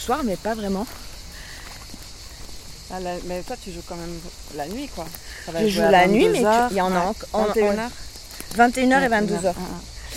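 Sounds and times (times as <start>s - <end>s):
speech: 0.0s - 1.1s, 2.9s - 9.9s
cicadas chirring: 0.0s - 10.1s.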